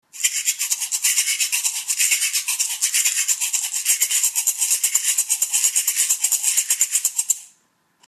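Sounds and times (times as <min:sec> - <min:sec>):
small slotted bamboo shaker: 0:00.1 - 0:07.6.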